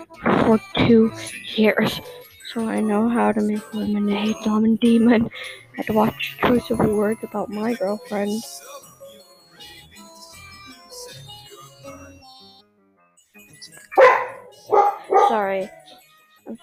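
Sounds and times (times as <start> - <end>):
speech: 0.0 - 8.9, 15.3 - 15.8, 16.5 - 16.6
soft speech: 0.2 - 8.8, 9.6 - 11.3, 15.0 - 16.6
pet dog barking: 14.0 - 15.5.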